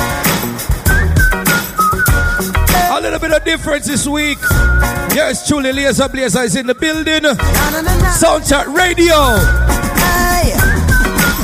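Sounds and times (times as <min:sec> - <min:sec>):
loud music with a deep bass line and thumping beats: 0:00.0 - 0:11.4
person whistling short bright melodic notes: 0:00.8 - 0:07.2, 0:09.3 - 0:11.4
speech: 0:03.4 - 0:09.8.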